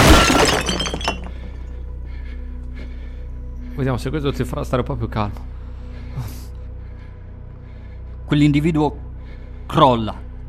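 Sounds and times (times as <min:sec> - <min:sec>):
plaster bust smashing over someone's head: 0:00.0 - 0:01.4
speech: 0:03.8 - 0:05.6, 0:08.3 - 0:09.1, 0:09.7 - 0:10.2.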